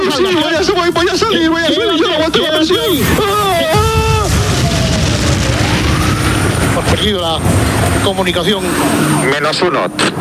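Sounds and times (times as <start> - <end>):
speech: 0.1 - 4.0, 6.8 - 10.2
bomb explosion on a bus: 2.8 - 9.2.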